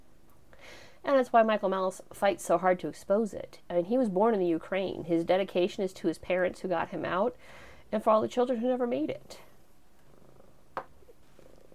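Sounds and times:
speech: 0:01.1 - 0:09.5
cat purring: 0:10.0 - 0:11.7.

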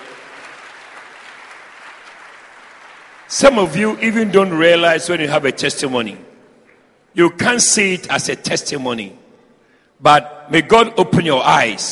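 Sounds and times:
crowd clapping: 0:00.0 - 0:04.8
speech: 0:03.3 - 0:06.3, 0:07.2 - 0:09.2, 0:10.0 - 0:11.9.

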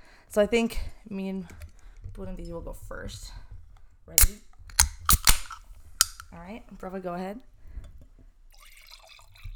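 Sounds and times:
speech: 0:00.3 - 0:01.6, 0:02.2 - 0:03.4, 0:04.1 - 0:04.5, 0:06.3 - 0:07.5
wine from a winery in Langley pouring into a glass: 0:08.5 - 0:09.5.

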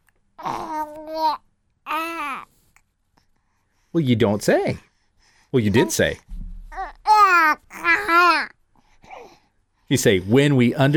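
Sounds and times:
infant babbling in sing-song bursts: 0:00.4 - 0:02.5, 0:06.7 - 0:09.4
speech: 0:00.4 - 0:02.5, 0:03.9 - 0:04.9, 0:05.5 - 0:06.3, 0:09.9 - 0:10.9.

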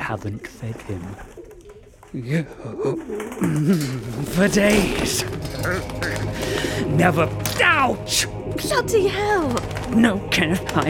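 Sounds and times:
speech: 0:00.1 - 0:01.4, 0:02.1 - 0:10.8
raven calling with low warbling throaty notes: 0:02.7 - 0:07.0.

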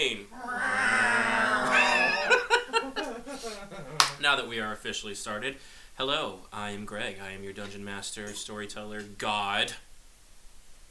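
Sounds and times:
people imitating a cat meow: 0:00.3 - 0:02.5
people laughing: 0:00.4 - 0:04.2
speech: 0:04.3 - 0:09.9.

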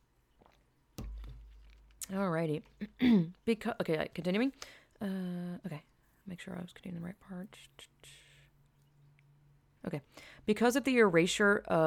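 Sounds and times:
cup knocking against the microphone: 0:01.0 - 0:02.0
speech: 0:02.1 - 0:08.2, 0:09.8 - 0:11.8.

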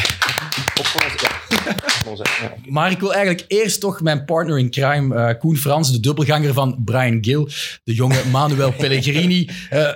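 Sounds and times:
small group applauding: 0:00.0 - 0:02.6
laughter: 0:00.1 - 0:02.7, 0:08.1 - 0:09.9
speech: 0:00.8 - 0:01.4, 0:02.1 - 0:09.9.

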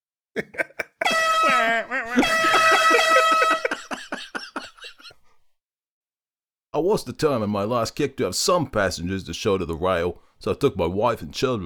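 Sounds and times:
speech: 0:00.4 - 0:00.7, 0:06.8 - 0:11.6
short choppy coughing or laughing bursts: 0:00.4 - 0:05.2
loud blaring air horn blast: 0:01.0 - 0:04.0.

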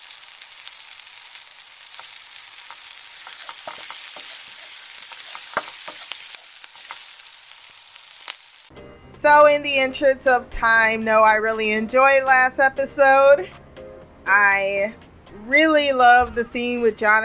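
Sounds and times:
bacon sizzling in a hot frying pan: 0:00.0 - 0:08.7
speech: 0:08.7 - 0:13.6, 0:14.3 - 0:17.2.

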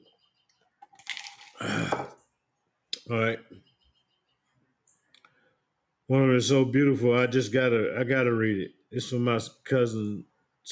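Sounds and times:
person sipping and gulping water: 0:01.0 - 0:02.2
speech: 0:03.1 - 0:03.6, 0:06.1 - 0:10.7.

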